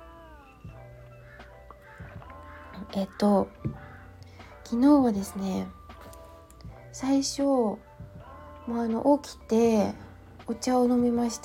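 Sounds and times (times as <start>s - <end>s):
crows cawing outside: 1.1s - 2.9s
speech: 2.9s - 3.8s, 4.7s - 5.8s, 7.0s - 7.9s, 8.7s - 11.4s.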